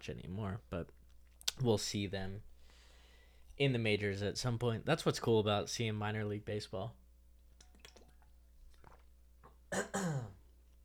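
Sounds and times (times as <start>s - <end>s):
speech: 0.0s - 1.0s, 1.6s - 2.5s, 3.6s - 7.0s, 9.7s - 10.4s
person coughing and clearing throat from something caught in the throat: 9.7s - 10.4s.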